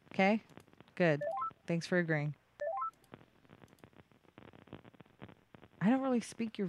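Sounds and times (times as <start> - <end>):
speech: 0.2 - 2.4, 5.8 - 6.6
telephone keypad tones as a number is dialed: 1.2 - 1.5, 2.6 - 3.0.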